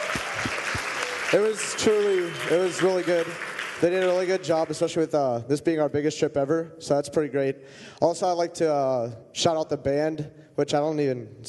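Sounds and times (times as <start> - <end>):
audience applause: 0.0 - 4.9
speech: 1.3 - 11.4.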